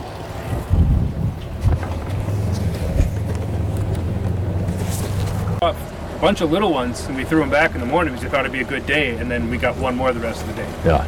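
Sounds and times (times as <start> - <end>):
wind gusts buffeting the microphone during a fishing trip: 0.4 - 5.6
speech: 5.6 - 11.0.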